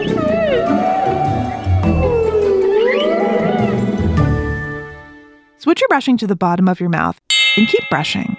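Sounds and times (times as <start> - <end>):
humpback whale song: 0.0 - 4.2
speech: 5.9 - 8.3.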